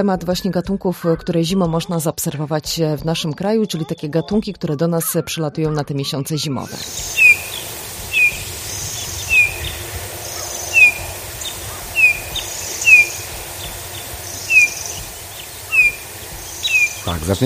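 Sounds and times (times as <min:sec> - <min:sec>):
speech: 0:00.0 - 0:07.5, 0:17.1 - 0:17.4
Eurasian bullfinch giving soft short whistling calls: 0:06.8 - 0:17.4.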